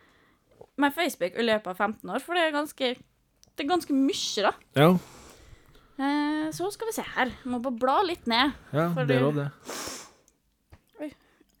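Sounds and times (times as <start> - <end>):
speech: 0.8 - 5.2, 6.0 - 9.9
long breathy sniff through a congested nose: 9.6 - 10.3.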